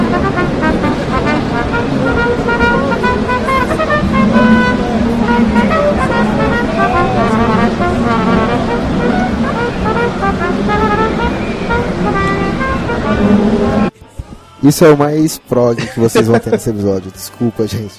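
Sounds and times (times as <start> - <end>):
cornet playing sustained melodic phrases: 0.0 - 14.0
faint street noise: 0.0 - 17.9
speech: 14.6 - 17.9
laughter: 15.7 - 17.0.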